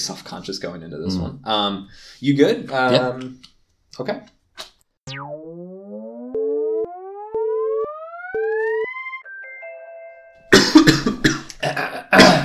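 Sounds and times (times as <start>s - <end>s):
speech: 0.0s - 4.7s
rising electronic tone: 5.0s - 10.4s
steady beeps: 5.1s - 10.4s
person coughing harshly: 10.5s - 12.4s
person clearing throat: 10.6s - 12.4s.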